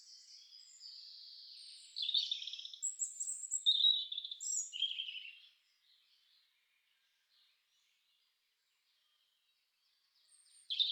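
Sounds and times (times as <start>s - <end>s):
European robin singing: 0.0s - 5.5s, 10.6s - 10.8s.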